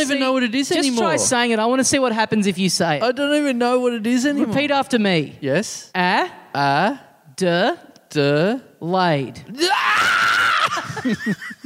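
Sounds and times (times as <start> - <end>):
speech: 0.0 - 11.6
person screaming: 9.6 - 10.9
laughter: 10.6 - 11.6.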